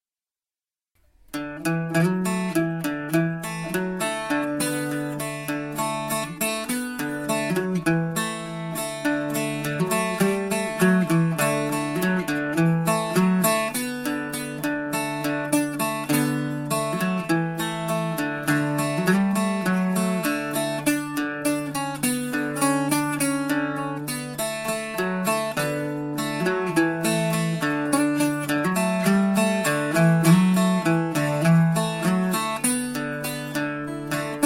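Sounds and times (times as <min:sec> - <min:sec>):
bouzouki melody: 0:01.0 - 0:34.4.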